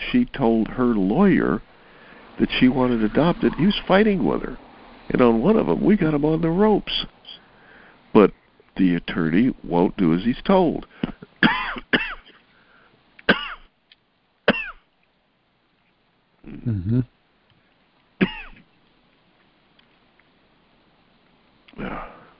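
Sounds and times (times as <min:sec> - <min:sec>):
speech: 0:00.1 - 0:01.7, 0:02.4 - 0:07.2, 0:08.1 - 0:12.0, 0:16.4 - 0:17.1
throat clearing: 0:10.9 - 0:12.2, 0:16.5 - 0:17.1, 0:21.8 - 0:22.2
person coughing: 0:11.0 - 0:12.4, 0:13.3 - 0:13.6, 0:16.5 - 0:17.0, 0:18.2 - 0:18.6.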